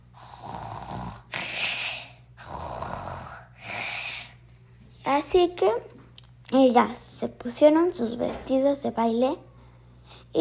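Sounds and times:
snoring heard through a wall: 0.2 - 4.1
speech: 5.2 - 5.9, 6.5 - 9.5.

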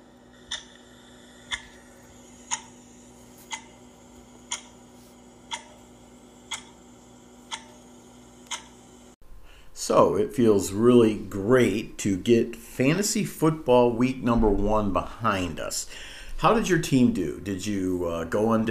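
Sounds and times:
clock ticking: 0.4 - 8.8
speech: 9.8 - 18.7.

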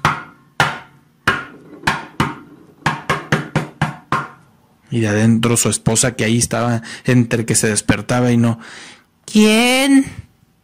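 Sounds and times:
knocking on a door: 0.0 - 4.4
speech: 4.9 - 10.2.

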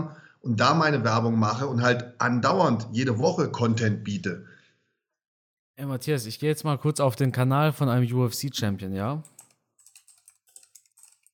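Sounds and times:
speech: 0.0 - 4.5, 5.8 - 9.3
rapid clattering of computer keys: 9.2 - 11.3.

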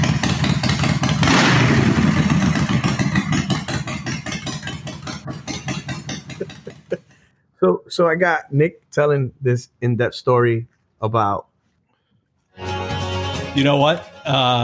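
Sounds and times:
motorcycle engine idling and revving: 0.0 - 7.0
laughter: 6.3 - 7.1
speech: 7.6 - 11.5, 13.6 - 14.6.

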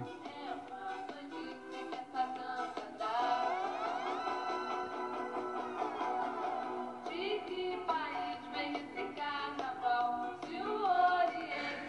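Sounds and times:
group of kids and a woman singing a children's song: 0.0 - 3.8, 7.0 - 11.8
steady instrumental backing: 0.0 - 11.8.

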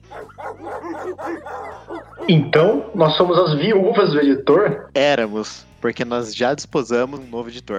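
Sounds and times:
several dogs barking and yapping: 0.0 - 4.0
speech: 1.0 - 7.7.

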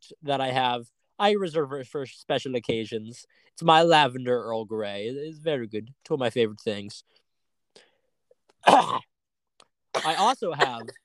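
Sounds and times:
speech: 0.1 - 7.2, 8.6 - 9.1, 10.0 - 11.0
cough: 8.6 - 9.1, 10.0 - 11.0.

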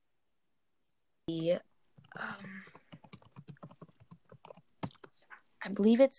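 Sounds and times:
typing on a Logitech wireless computer keyboard: 1.3 - 5.2
person speaking: 1.3 - 6.1.

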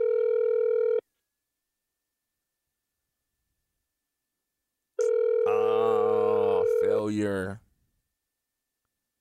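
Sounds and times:
ringback tone of an outgoing phone call: 0.0 - 1.0, 5.0 - 7.0
speech: 7.1 - 7.6.

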